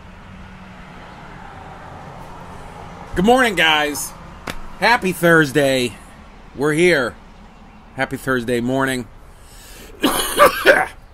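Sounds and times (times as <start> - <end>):
speech: 3.2 - 4.2, 4.8 - 6.0, 6.6 - 7.2, 8.0 - 9.2
chesty phlegmy wet cough: 10.0 - 11.0.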